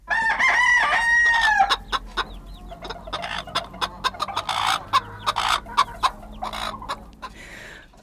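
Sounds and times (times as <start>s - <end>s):
rooster crowing: 0.0s - 7.8s
chickens clucking and squawking: 0.0s - 8.0s.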